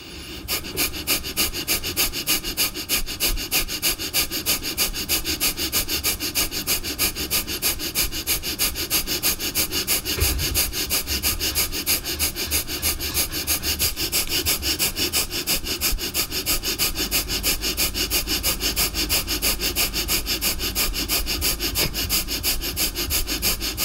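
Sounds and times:
rapid forceful breathing through the nose during a breathing exercise: 0.0 - 23.8.

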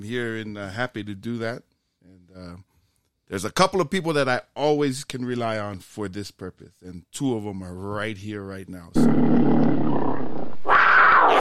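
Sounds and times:
speech: 0.0 - 2.7, 3.3 - 9.4
big cat roaring, cougar or tiger: 9.0 - 11.3.

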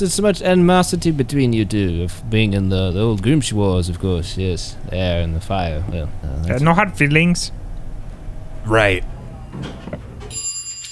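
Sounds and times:
speech: 0.0 - 7.6, 8.6 - 9.9
low mechanical rumble: 0.0 - 10.3
elevator ding: 0.7 - 10.9
elevator sliding door opening: 8.0 - 10.4.

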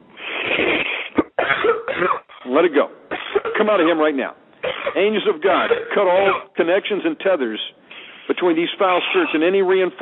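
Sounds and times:
deep harsh coughing: 0.2 - 2.5, 3.1 - 4.0, 4.6 - 6.6, 8.9 - 9.4
speech: 2.6 - 3.0, 3.6 - 4.4, 5.0 - 7.7, 8.3 - 10.0.

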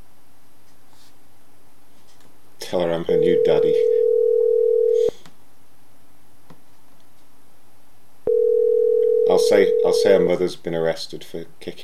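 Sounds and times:
speech: 2.7 - 4.0, 9.4 - 11.8
telephone line tone on a call: 3.1 - 5.1, 8.3 - 10.1.

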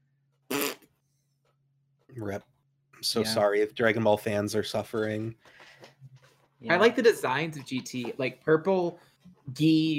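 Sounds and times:
single short loud fart: 0.5 - 0.9
speech: 2.2 - 5.9, 6.6 - 9.9.

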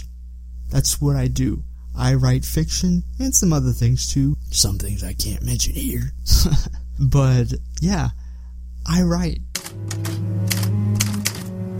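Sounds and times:
speech: 0.7 - 8.2, 8.8 - 9.9
typewriter keys clacking: 9.6 - 11.6.

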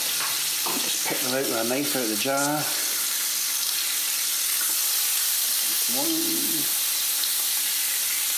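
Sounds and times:
bacon with turmeric and jalapeno slices sizzling in a hot pan: 0.0 - 8.3
speech: 1.3 - 2.8, 5.9 - 6.8.

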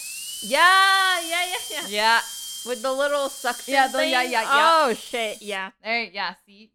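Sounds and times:
dentist's drill whirring: 0.0 - 5.6
speech: 0.4 - 6.7.

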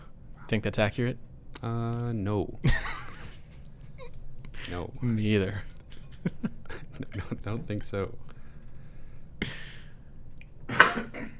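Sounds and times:
speech: 0.5 - 2.9, 4.7 - 8.3
laughter: 2.6 - 8.3, 9.4 - 9.9
sneeze: 10.7 - 11.3.

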